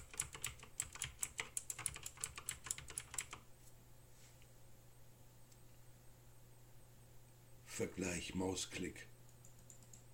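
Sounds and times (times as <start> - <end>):
computer keyboard typing: 0.0 - 3.4, 9.3 - 10.1
speech: 7.8 - 9.1.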